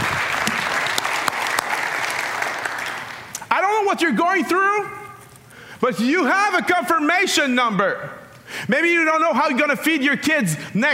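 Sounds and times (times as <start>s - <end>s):
audience clapping in dense applause: 0.0s - 3.3s
speech: 3.9s - 5.0s, 5.8s - 10.9s.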